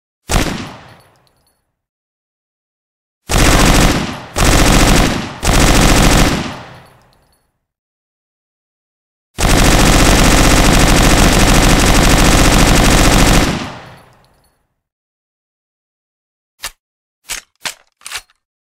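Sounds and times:
Thompson gun firing: 0.3 - 1.2, 3.3 - 7.0, 9.4 - 14.2.

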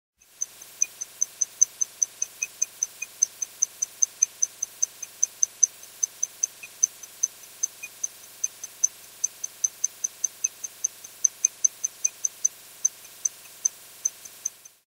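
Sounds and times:
pocket watch ticking: 0.2 - 14.8.

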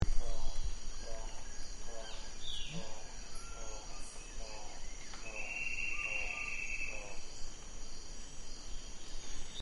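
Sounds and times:
Gould's toucanet calling: 0.3 - 7.3.

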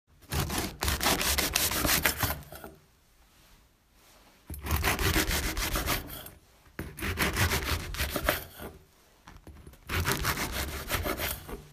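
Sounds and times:
bread being cut: 0.2 - 2.5, 4.6 - 8.8, 9.4 - 11.7.

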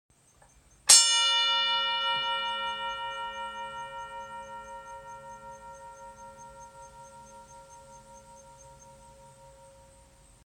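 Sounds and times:
boxing bell: 0.9 - 10.2.

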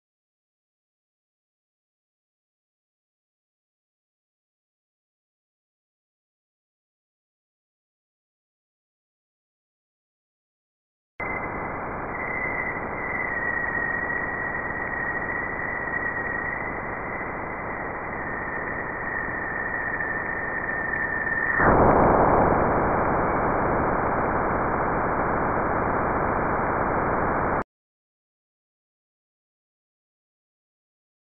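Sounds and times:
Jupiter radio waves: 11.2 - 27.6.

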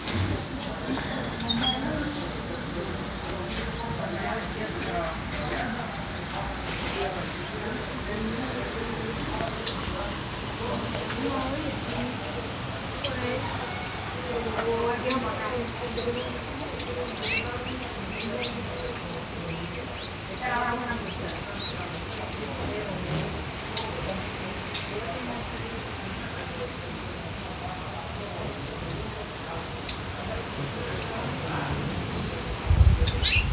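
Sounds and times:
bee hummingbird: 0.0 - 31.2, 32.1 - 33.5.

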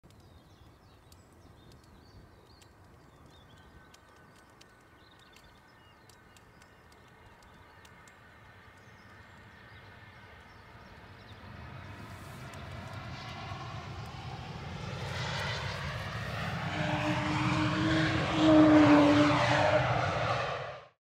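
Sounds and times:
Airbus airliner taking off: 8.0 - 20.9.

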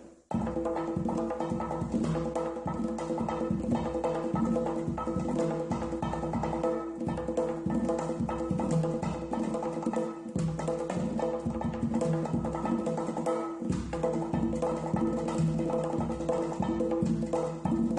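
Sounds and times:
saz playing: 0.3 - 17.9.

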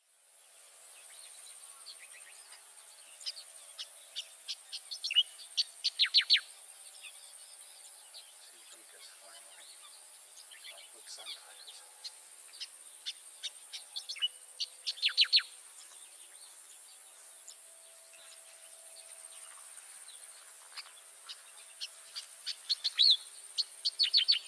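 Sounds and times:
striated grassbird: 0.5 - 24.4.

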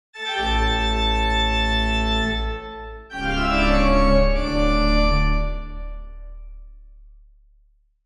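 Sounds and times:
organ playing: 0.2 - 6.4.

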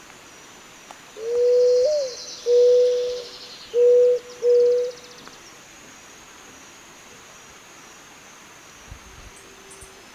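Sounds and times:
faint high hiss: 0.0 - 10.1
Zenaida dove cooing: 1.2 - 5.0.

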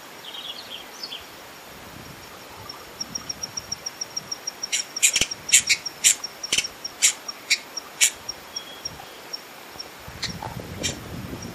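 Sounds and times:
Hyacinth visorbearer ticks and harsh chips: 2.3 - 11.5.

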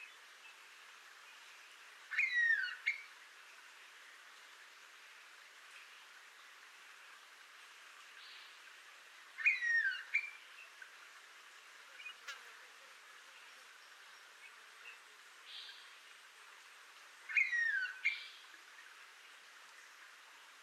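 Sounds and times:
blue pitta calling: 2.1 - 3.0, 9.4 - 10.4, 17.3 - 18.3.

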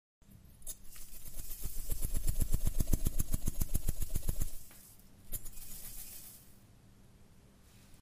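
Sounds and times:
salt shaker shaking: 0.6 - 6.6.

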